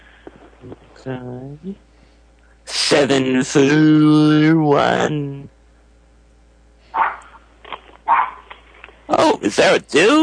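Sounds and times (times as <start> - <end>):
speech: 0.6 - 1.9, 2.9 - 5.6, 9.2 - 10.2
chihuahua barking in high yaps: 6.9 - 8.5.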